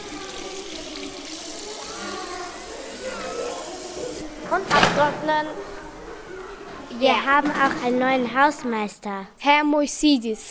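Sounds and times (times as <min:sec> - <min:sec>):
hands washed under running tap water: 0:00.0 - 0:05.5
speech: 0:04.5 - 0:05.8, 0:07.0 - 0:10.4.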